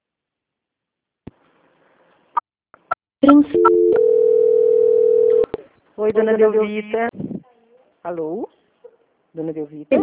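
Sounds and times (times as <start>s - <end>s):
speech: 3.2s - 3.7s, 6.0s - 7.2s, 8.0s - 8.6s, 9.4s - 10.0s
telephone dial tone after a dropped call: 3.6s - 5.5s.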